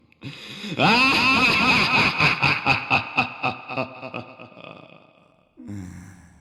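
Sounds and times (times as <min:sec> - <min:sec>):
evil laugh: 0:00.8 - 0:05.2.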